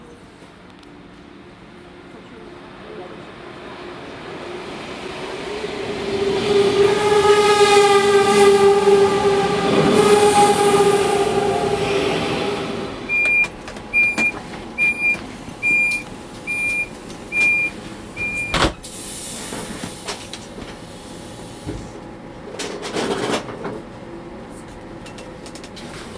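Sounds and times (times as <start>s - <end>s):
train rolling into a station and braking with a tonal whine: 0.2s - 24.3s
short evenly spaced electronic beeps: 13.1s - 18.6s.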